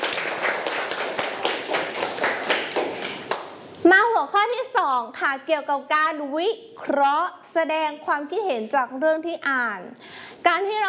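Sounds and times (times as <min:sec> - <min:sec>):
group of children clapping hands: 0:00.0 - 0:03.6
speech: 0:04.4 - 0:10.8.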